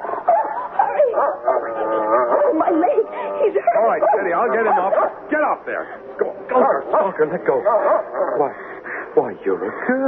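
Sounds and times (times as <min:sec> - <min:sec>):
dog barking and yipping excitedly: 0:00.0 - 0:05.2, 0:07.6 - 0:08.5
speech: 0:02.8 - 0:10.0.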